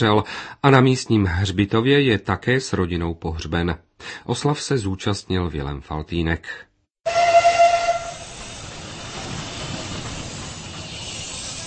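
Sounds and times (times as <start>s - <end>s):
speech: 0.0s - 7.2s
special steam train whistle: 7.0s - 8.5s
hissing steam from a steam locomotive: 8.1s - 11.6s.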